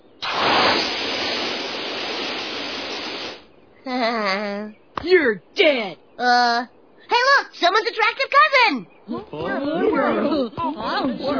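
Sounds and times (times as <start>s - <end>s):
spray cannon jetpacks hissing during takeoff: 0.2s - 3.5s
speech: 3.9s - 11.3s.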